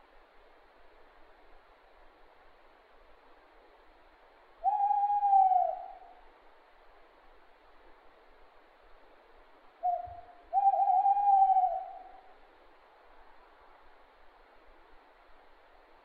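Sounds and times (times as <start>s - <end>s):
owl giving long level hoots: 4.6s - 6.2s, 9.8s - 12.3s.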